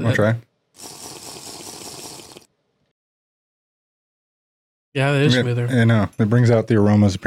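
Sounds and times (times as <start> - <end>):
speech: 0.0 - 1.0, 5.0 - 7.2
dash of water poured into a glass of whiskey: 0.8 - 2.5.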